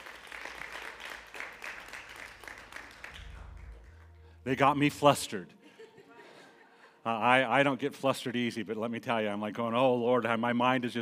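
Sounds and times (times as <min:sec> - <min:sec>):
crowd applauding: 0:00.0 - 0:04.4
low hum: 0:02.3 - 0:06.1
speech: 0:04.4 - 0:05.6, 0:07.1 - 0:11.0
laughter: 0:05.5 - 0:07.2.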